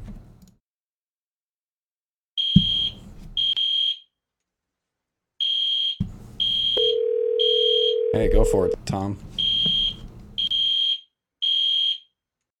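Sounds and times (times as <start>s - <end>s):
shrill piercing alarm blaring in a room: 2.4s - 4.1s, 5.4s - 7.8s, 9.4s - 12.1s
heavy thumps: 2.6s - 3.4s
speech: 8.1s - 9.4s.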